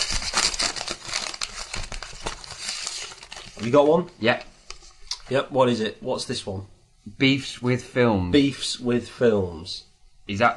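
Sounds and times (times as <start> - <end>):
paper slips rustling as they are stirred in a hat: 0.0 - 4.0
speech: 3.6 - 4.5, 5.3 - 10.5.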